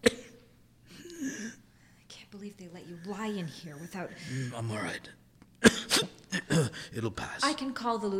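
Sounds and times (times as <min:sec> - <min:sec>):
painful cough: 0:00.0 - 0:01.6, 0:05.6 - 0:06.9
speech: 0:02.4 - 0:05.2, 0:06.6 - 0:08.1.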